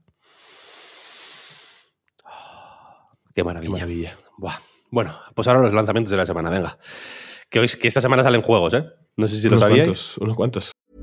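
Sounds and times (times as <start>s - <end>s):
deep breathing in and out: 0.1s - 3.2s, 6.8s - 7.5s
speech: 3.4s - 10.7s.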